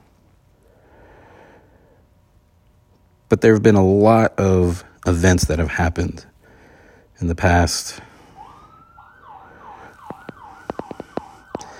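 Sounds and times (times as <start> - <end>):
speech: 3.3 - 6.3, 7.2 - 8.1
ambulance siren wailing near a fire station: 8.2 - 11.7.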